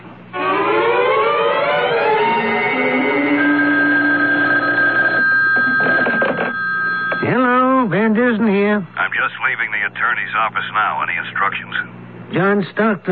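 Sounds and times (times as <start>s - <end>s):
telephone ringing over the line: 0.4s - 7.8s
speech: 9.1s - 13.1s.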